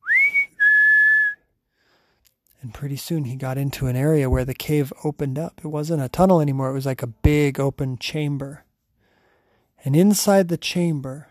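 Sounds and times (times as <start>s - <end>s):
person whistling: 0.0s - 1.5s
speech: 2.6s - 8.6s, 9.8s - 11.2s.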